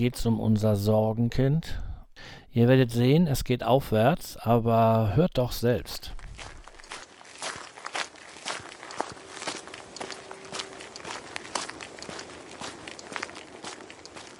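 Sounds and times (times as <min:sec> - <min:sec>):
speech: 0:00.0 - 0:06.5
footsteps outdoors while walking a borrowed dog: 0:05.5 - 0:14.3.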